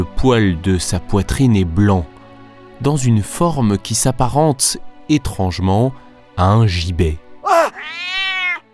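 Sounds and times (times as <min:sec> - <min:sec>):
speech: 0:00.2 - 0:02.2, 0:02.8 - 0:08.0
cat meowing: 0:07.5 - 0:08.6.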